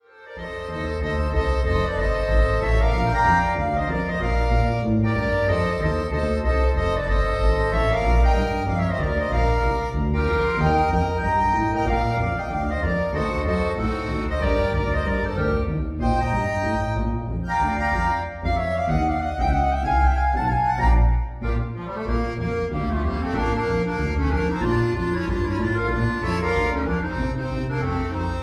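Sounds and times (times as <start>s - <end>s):
computer-generated march tune trio section: 0.3s - 28.4s.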